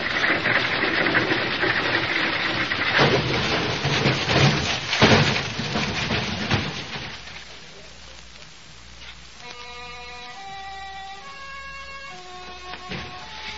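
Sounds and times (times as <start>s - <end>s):
wagon jolts and bangs: 0.0s - 7.3s
fortune-telling wagon rolling downhill, rumbling and rattling: 0.0s - 7.6s, 11.3s - 13.5s.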